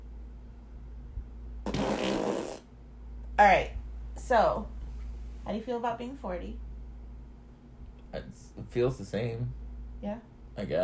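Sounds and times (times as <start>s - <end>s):
whoopee cushion fart: 1.6s - 2.7s
speech: 3.4s - 4.7s, 5.5s - 6.6s, 8.1s - 10.8s.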